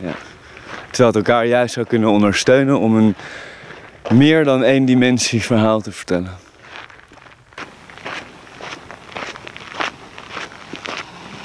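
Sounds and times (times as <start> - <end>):
speech: 0.0 - 0.3, 1.0 - 6.4
footsteps on a rough leafy or gravelly path: 0.0 - 11.4.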